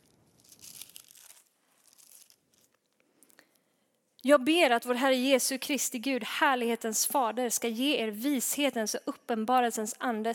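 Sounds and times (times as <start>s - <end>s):
book pages being flipped: 0.0s - 3.0s
speech: 4.2s - 10.3s.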